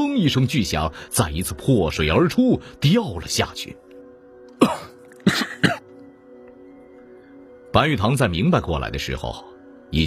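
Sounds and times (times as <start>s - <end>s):
speech: 0.2s - 3.8s, 4.7s - 5.8s, 7.8s - 10.0s
man coughing after nearly drowning: 4.6s - 5.9s.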